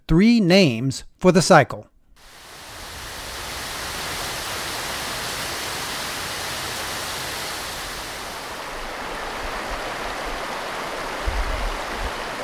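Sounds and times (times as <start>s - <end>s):
speech: 0.1s - 1.9s
dense rainfall: 2.2s - 12.4s.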